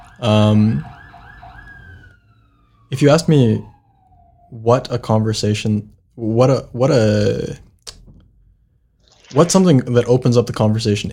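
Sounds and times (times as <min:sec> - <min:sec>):
emergency vehicle siren passing outside: 0:00.0 - 0:05.0
speech: 0:00.2 - 0:00.9, 0:02.9 - 0:03.7, 0:04.5 - 0:07.6, 0:09.3 - 0:11.1.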